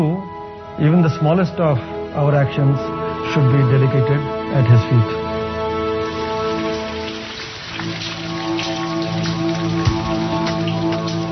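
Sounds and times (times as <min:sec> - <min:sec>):
speech: 0:00.8 - 0:05.2
steady rain drops striking a surface: 0:05.9 - 0:11.3.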